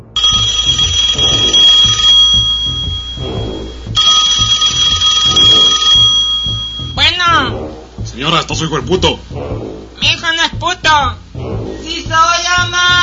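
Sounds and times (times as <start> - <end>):
pulsing low beat: 0.0 - 13.0
custom mobile phone ringtone: 0.2 - 7.0
speech: 8.2 - 11.2, 11.8 - 13.0.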